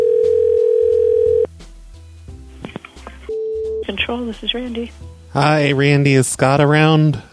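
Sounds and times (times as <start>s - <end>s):
telephone dial tone: 0.0s - 1.5s, 3.3s - 3.8s
speech: 4.1s - 7.3s.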